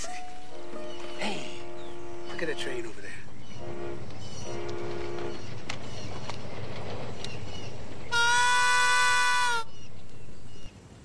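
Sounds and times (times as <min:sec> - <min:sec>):
long tonal train horn blasts: 0:00.4 - 0:05.5, 0:08.1 - 0:09.7
train rumbling past with rolling clatter: 0:00.5 - 0:10.7.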